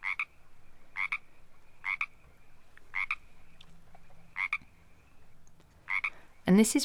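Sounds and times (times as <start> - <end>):
frog croaking a two-part ribbit call: 0.0 - 0.3, 0.9 - 2.2, 2.8 - 3.3, 4.3 - 4.7, 5.9 - 6.2
faint continuous trill or hum: 0.0 - 6.8
speech: 6.5 - 6.8.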